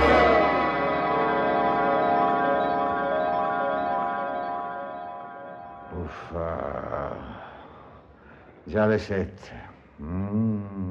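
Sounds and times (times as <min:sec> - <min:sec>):
alarm clock bell ringing: 0:00.0 - 0:06.3
speech: 0:06.1 - 0:07.4, 0:08.7 - 0:10.8.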